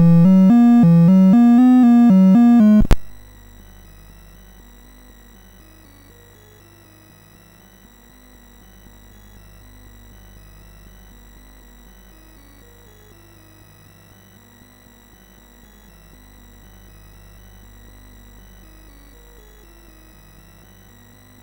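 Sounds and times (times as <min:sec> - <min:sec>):
chiptune music on MOS6581R4 sound chip: 0:00.0 - 0:03.2.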